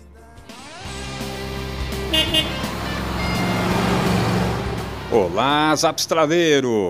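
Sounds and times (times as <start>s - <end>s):
heavy highway traffic roar: 0.8s - 6.8s
short horn toots: 2.1s - 4.0s
speech: 2.3s - 2.7s, 5.1s - 6.8s.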